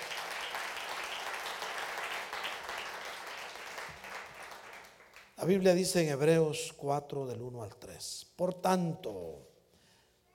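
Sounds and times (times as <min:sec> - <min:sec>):
crowd applauding: 0:00.0 - 0:05.4
speech: 0:05.4 - 0:09.5.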